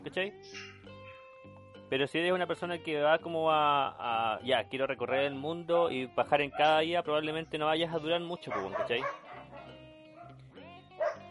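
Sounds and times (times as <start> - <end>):
speech: 0.1 - 0.8, 1.9 - 9.2
dogs barking: 6.5 - 6.8, 8.5 - 10.4, 11.0 - 11.2.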